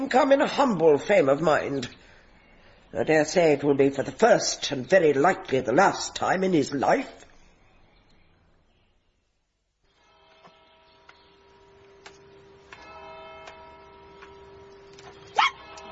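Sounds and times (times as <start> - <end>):
speech: 0.0 - 2.0, 2.9 - 7.3
clock bell striking six o'clock: 10.0 - 15.9.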